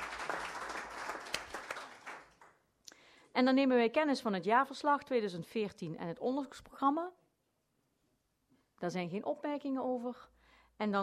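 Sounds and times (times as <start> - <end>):
room full of people at a meeting applauding warmly: 0.0 - 2.6
speech: 3.4 - 7.2, 8.8 - 11.0.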